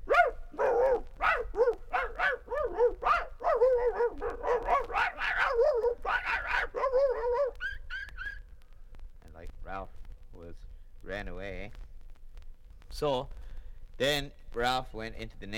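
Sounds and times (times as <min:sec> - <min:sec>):
person vocally imitating a dog fight with barks and yelps: 0:00.0 - 0:08.5
speech: 0:14.0 - 0:15.5.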